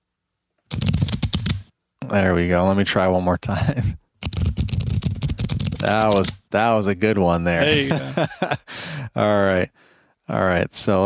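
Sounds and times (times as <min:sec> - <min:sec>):
deck of cards being shuffled: 0:00.7 - 0:01.7, 0:04.2 - 0:06.4
speech: 0:02.1 - 0:04.0, 0:05.8 - 0:11.0
laughter: 0:07.6 - 0:09.2.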